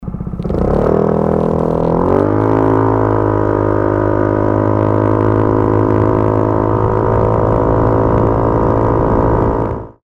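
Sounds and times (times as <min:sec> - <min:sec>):
acceleration sound: 0:00.0 - 0:10.0.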